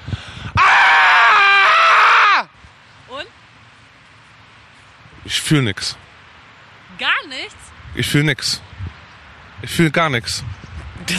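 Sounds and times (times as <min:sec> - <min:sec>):
man screaming loudly: 0:00.6 - 0:02.5
speech: 0:05.4 - 0:06.0, 0:07.0 - 0:08.7, 0:09.6 - 0:11.1.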